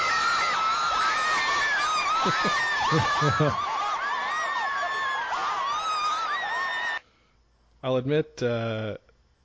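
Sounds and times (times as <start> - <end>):
group of people screaming in celebration after a winning curling shot: 0.0 - 7.0
people laughing: 1.1 - 5.6
speech: 2.2 - 3.7, 7.8 - 9.1.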